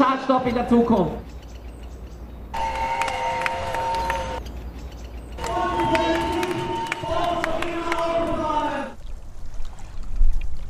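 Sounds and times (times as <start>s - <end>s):
speech: 0.3s - 1.4s
horn-like blasts: 2.6s - 4.4s, 5.4s - 8.4s
crowd of protesters in a Vienna street protesting a road tunnel: 5.4s - 9.0s.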